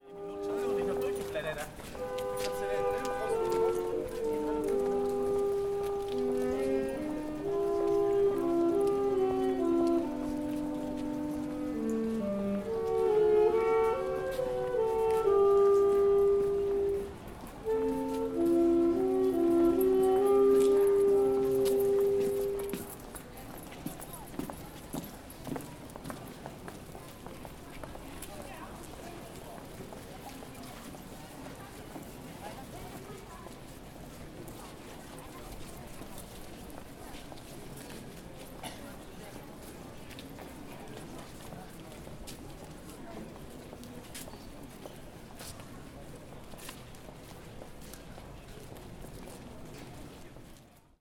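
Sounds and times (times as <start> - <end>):
street musicians playing two saxophones: 0.0 - 22.8.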